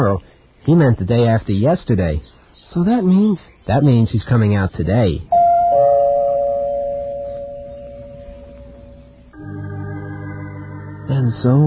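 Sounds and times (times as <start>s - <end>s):
speech: 0.0s - 5.3s, 11.3s - 11.6s
two-tone doorbell chime: 5.3s - 9.4s.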